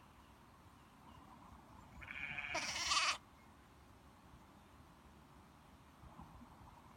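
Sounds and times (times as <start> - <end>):
young lamb bleating: 2.0 - 3.2.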